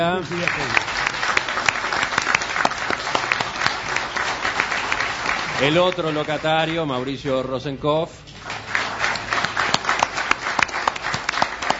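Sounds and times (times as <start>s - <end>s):
speech: 0.0s - 1.0s, 5.6s - 8.2s
audience applause: 0.0s - 7.2s, 8.4s - 11.7s.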